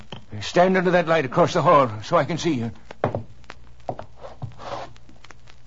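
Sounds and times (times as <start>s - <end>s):
speech: 0.5s - 2.9s
letter slid under a door: 4.2s - 4.9s.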